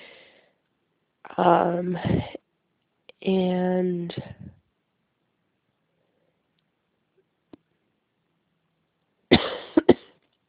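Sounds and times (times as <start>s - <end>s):
speech: 1.3s - 2.4s, 3.2s - 4.5s
person with a sinus infection coughing: 9.3s - 10.2s.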